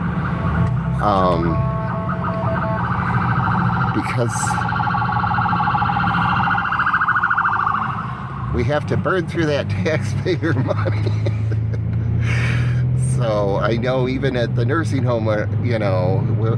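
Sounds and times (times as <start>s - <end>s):
ambulance siren wailing: 0.0s - 9.2s
speech: 1.0s - 1.7s, 4.0s - 4.7s, 8.6s - 11.4s, 13.2s - 16.5s
laughter: 9.7s - 12.7s.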